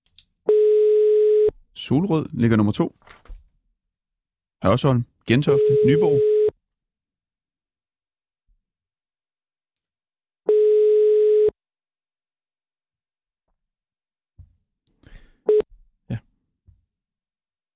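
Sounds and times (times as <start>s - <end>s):
telephone busy signal: 0.5s - 1.5s, 5.5s - 6.5s, 10.5s - 11.5s
speech: 1.9s - 3.2s, 4.6s - 6.3s.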